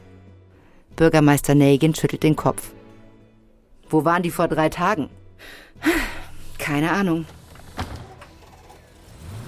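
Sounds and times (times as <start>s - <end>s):
speech: 1.0s - 2.8s, 3.9s - 7.9s
bus doors shutting: 7.2s - 9.4s.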